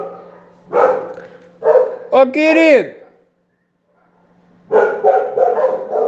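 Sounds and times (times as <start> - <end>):
several dogs barking at a house with a kennel: 0.0 - 2.2, 3.9 - 6.0
speech: 2.1 - 3.0.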